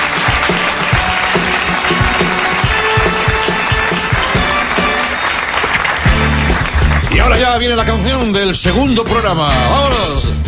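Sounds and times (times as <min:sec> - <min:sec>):
loud sustained applause from a crowd: 0:00.0 - 0:07.4
speech: 0:07.3 - 0:10.3.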